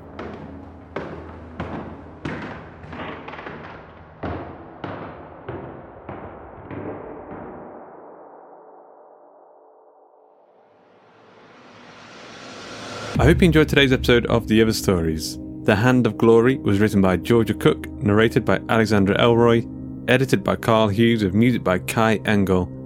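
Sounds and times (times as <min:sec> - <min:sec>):
heavy footsteps thumping in a cabin: 0:00.0 - 0:06.9
speech: 0:13.2 - 0:22.8.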